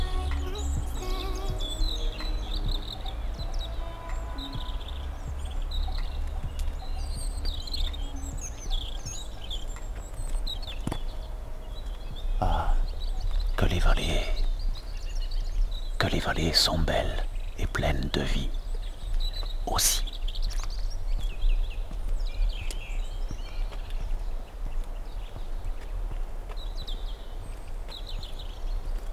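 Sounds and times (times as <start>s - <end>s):
steady low rumble: 0.0s - 18.7s
birds singing and chirping: 0.0s - 29.1s
speech: 16.1s - 18.6s, 19.7s - 20.0s.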